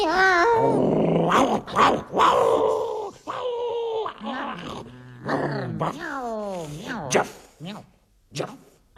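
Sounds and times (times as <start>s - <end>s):
voice imitating a stray dog growling: 0.2s - 7.3s
voice imitating a stray dog with yelping barks and whines: 0.2s - 8.9s.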